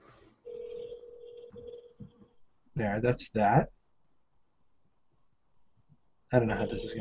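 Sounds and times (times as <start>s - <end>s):
steady electronic telephone ringing tone over a phone line: 0.4s - 2.1s
speech: 2.8s - 3.8s, 6.3s - 6.9s.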